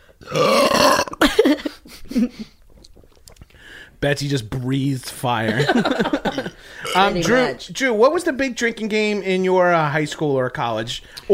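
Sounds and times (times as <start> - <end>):
short throaty vocal bursts: 0.2 - 1.2, 6.6 - 7.3
loud long rumbling burp: 0.2 - 1.3, 6.8 - 7.3
speech: 4.0 - 11.3
laughter: 5.4 - 6.7.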